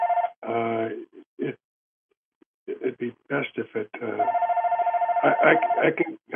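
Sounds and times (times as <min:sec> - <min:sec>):
phone ringing with a pulsing electronic trill: 0:00.0 - 0:00.4, 0:04.2 - 0:06.0
speech: 0:03.6 - 0:04.4, 0:05.2 - 0:06.2.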